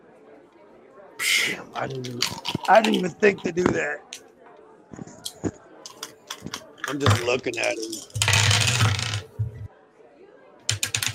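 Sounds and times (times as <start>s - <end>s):
speech: 1.5s - 4.2s, 6.9s - 8.2s
big handful of dice clattering across a hard surface: 1.9s - 3.5s, 5.9s - 9.6s, 10.7s - 11.1s.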